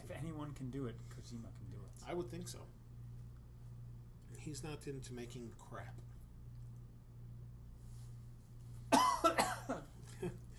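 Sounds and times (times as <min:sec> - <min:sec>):
low steady hum: 0:00.0 - 0:10.5
speech: 0:00.1 - 0:02.8, 0:04.3 - 0:06.1, 0:09.7 - 0:10.4
harsh coughs: 0:08.9 - 0:10.3.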